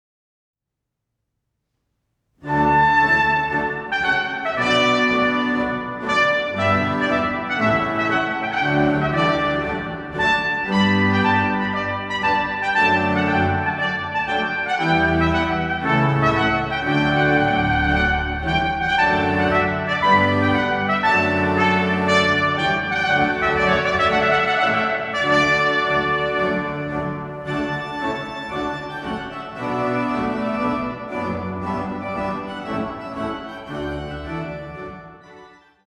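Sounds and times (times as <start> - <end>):
trumpet: 2.4 - 35.8
organ: 2.5 - 35.6.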